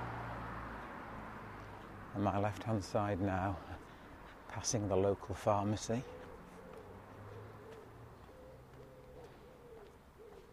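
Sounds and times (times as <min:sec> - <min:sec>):
speech: 0:02.1 - 0:03.9, 0:04.5 - 0:06.2
wood pigeons cooing outdoors: 0:05.8 - 0:10.5.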